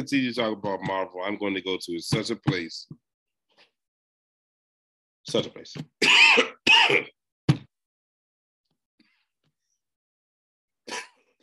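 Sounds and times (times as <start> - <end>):
speech: 0.0 - 3.0, 5.3 - 7.2
person coughing harshly: 6.0 - 7.2, 10.9 - 11.3.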